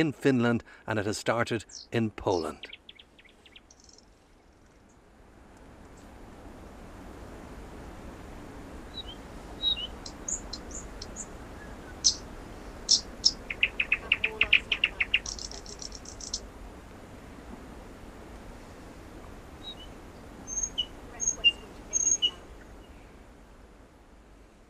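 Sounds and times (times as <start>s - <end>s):
speech: 0.0s - 2.8s
steady hiss of outdoor background: 0.0s - 24.6s
thrush nightingale singing: 1.6s - 4.6s, 8.9s - 16.4s, 19.6s - 23.2s.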